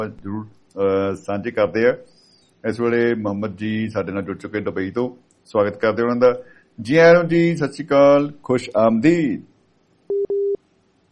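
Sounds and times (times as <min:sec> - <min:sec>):
speech: 0:00.0 - 0:09.5
telephone busy tone after a dropped call: 0:10.1 - 0:10.6.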